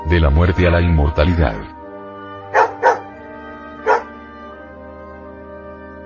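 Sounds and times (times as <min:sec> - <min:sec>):
speech: 0:00.1 - 0:01.8
dog barking: 0:02.5 - 0:03.1, 0:03.8 - 0:04.1.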